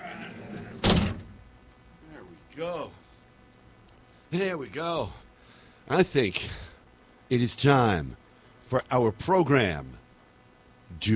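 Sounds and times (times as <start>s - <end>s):
heavy door thudding shut: 0.4s - 1.4s
speech: 2.6s - 3.0s, 4.3s - 5.2s, 5.9s - 6.7s, 7.3s - 10.0s, 10.9s - 11.1s.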